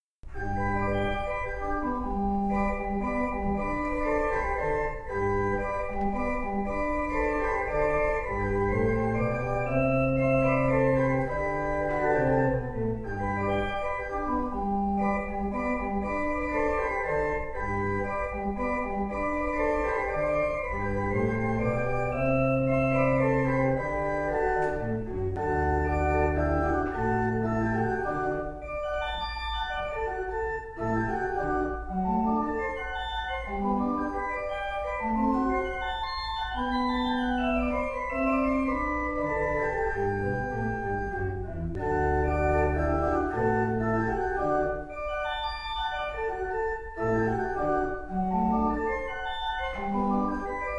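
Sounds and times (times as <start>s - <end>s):
flute clock playing a minuet: 0.3s - 50.7s.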